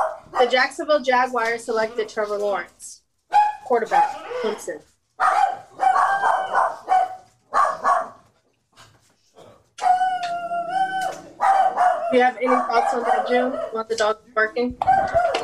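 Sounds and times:
several dogs barking and yelping with howl-like cries: 0.0s - 0.7s, 3.3s - 8.3s, 9.8s - 14.1s, 14.8s - 15.4s
speech: 0.4s - 3.0s, 3.7s - 5.3s, 12.1s - 15.4s.

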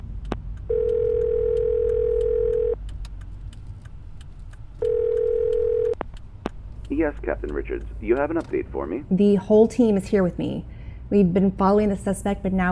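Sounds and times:
low car engine rumble: 0.0s - 12.6s
electronic car phone dialing tones placing a call from inside a car: 0.7s - 2.8s, 4.8s - 6.0s
speech: 7.0s - 12.6s.

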